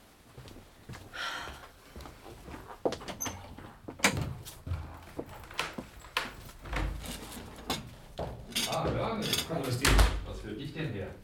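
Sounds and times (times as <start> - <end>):
door rattling and creaking open: 3.0 - 10.4
speech: 9.5 - 11.2.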